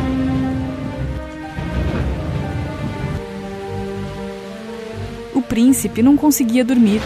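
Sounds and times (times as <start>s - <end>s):
low rumble possibly thunder: 0.0s - 4.2s
soft sustained musical tones: 0.0s - 7.0s
steady heavy rain: 0.0s - 7.0s
speech: 5.5s - 7.0s.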